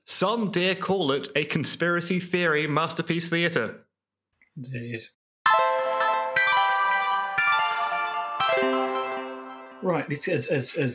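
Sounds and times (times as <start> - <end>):
speech: 0.1 - 3.8, 4.6 - 5.2, 9.8 - 10.9
bright ringing chime transition sound effect: 5.5 - 10.1.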